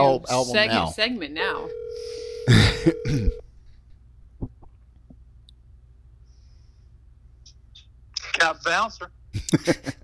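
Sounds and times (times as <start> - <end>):
speech: 0.0 - 3.4, 8.4 - 10.0
outgoing phone ring tone: 1.5 - 3.4
loud throaty burp-like noise: 2.5 - 3.4.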